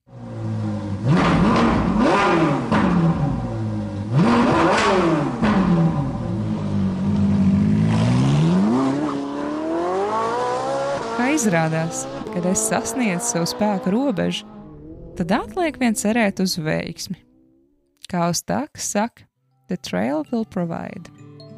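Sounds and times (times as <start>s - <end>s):
car engine revving and shifting gears as car pulls away: 0.1s - 17.9s
speech: 11.4s - 14.6s, 15.2s - 17.3s, 18.1s - 21.2s.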